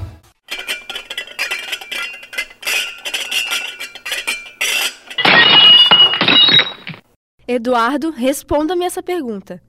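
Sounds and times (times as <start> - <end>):
tinkling glass shards: 0.5 - 7.0
glass jars smashing: 0.5 - 7.1
speech: 7.8 - 9.6.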